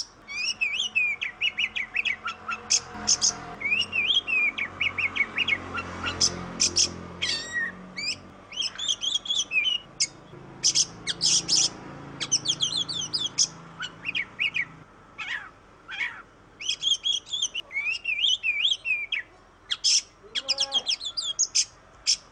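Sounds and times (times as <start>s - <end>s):
Oriental magpie-robin song with whistles and buzzy trills: 0.0s - 22.2s.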